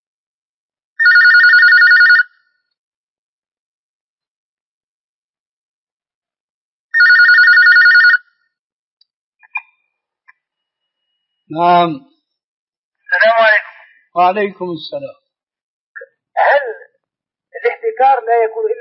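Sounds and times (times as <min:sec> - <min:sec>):
telephone ringing for an incoming call-in question: 0:01.0 - 0:02.6, 0:07.0 - 0:08.4
speech: 0:11.5 - 0:12.1, 0:14.2 - 0:15.2, 0:18.0 - 0:18.8.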